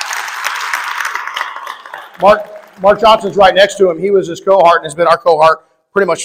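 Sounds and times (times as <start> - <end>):
audience applause: 0.0 - 3.8
speech: 2.2 - 6.2.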